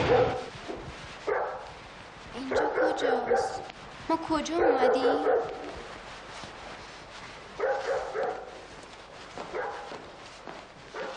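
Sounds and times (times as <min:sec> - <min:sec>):
dog barking: 0:00.0 - 0:00.5, 0:01.2 - 0:01.7, 0:02.4 - 0:03.7, 0:04.5 - 0:05.8, 0:07.6 - 0:08.6, 0:09.5 - 0:10.0, 0:10.9 - 0:11.1
steady hiss: 0:00.0 - 0:11.1
speech: 0:00.1 - 0:00.5, 0:02.4 - 0:05.7.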